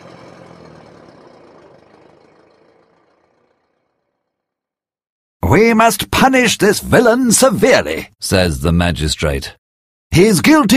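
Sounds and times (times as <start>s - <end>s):
car engine rumbling as the car pulls away: 0.0s - 4.6s
speech: 5.5s - 10.7s.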